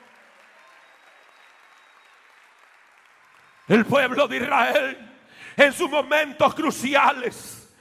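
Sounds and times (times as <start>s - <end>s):
audience applauding: 0.0s - 4.7s
speech: 3.7s - 7.6s.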